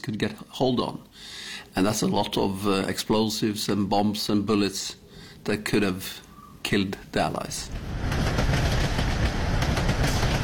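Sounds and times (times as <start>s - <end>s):
speech: 0.0s - 8.1s
electric train on a mine railway hauling sulfur: 7.5s - 10.4s
train wheels clattering over rail joints: 7.7s - 10.4s.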